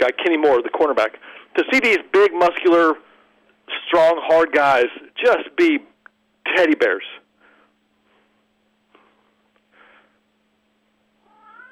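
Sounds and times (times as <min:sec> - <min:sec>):
speech: 0:00.0 - 0:03.1, 0:03.7 - 0:07.2
house cat meowing: 0:11.2 - 0:11.7.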